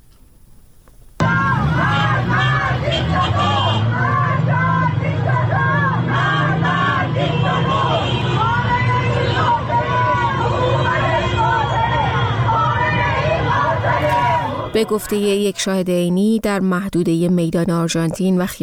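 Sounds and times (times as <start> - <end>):
large outdoor crowd of street protesters chanting slogans in Tehran: 1.2 - 15.8
traffic rumbling in Tehran: 1.2 - 18.6
speech: 14.8 - 18.6.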